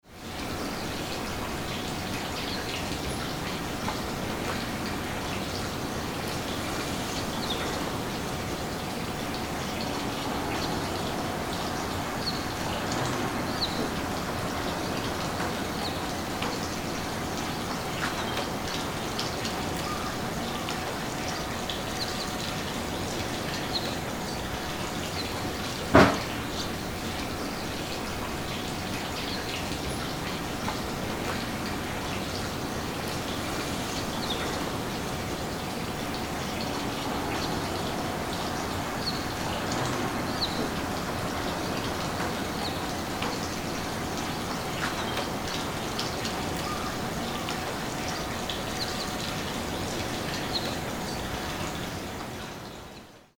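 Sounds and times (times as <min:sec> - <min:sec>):
flowing water in a waterway: 0:00.0 - 0:53.3.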